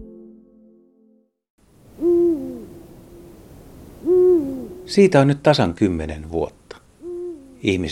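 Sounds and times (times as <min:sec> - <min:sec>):
Eurasian eagle-owl giving deep booming hoots: 0:01.9 - 0:05.1, 0:06.9 - 0:07.7.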